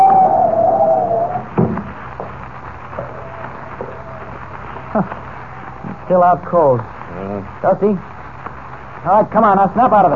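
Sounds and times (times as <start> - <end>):
howling wind of a blinding snowstorm: 0.0 - 8.0
speech: 5.0 - 5.2, 6.1 - 8.1, 9.0 - 10.1.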